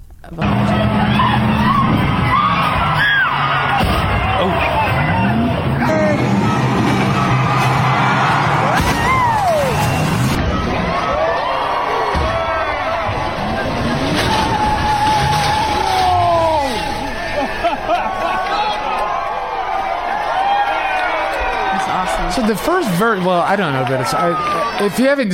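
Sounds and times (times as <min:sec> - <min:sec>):
speech: 0:00.2 - 0:00.8, 0:22.7 - 0:25.3
vehicle launching and slamming down: 0:00.4 - 0:11.2, 0:12.0 - 0:17.4
vehicle engine roaring and revving: 0:00.4 - 0:17.4
loud crowd cheering and shouting: 0:00.4 - 0:25.3
sweeping tire squeals: 0:00.5 - 0:17.9
laughter: 0:15.9 - 0:19.5.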